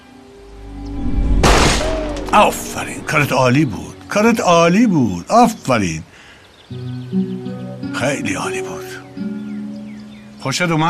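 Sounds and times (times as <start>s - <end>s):
low rumble: 0.2s - 4.2s
single loud gunshot at target practice: 1.3s - 3.1s
speech: 2.3s - 6.1s, 6.7s - 6.9s, 8.0s - 9.0s, 10.4s - 10.8s.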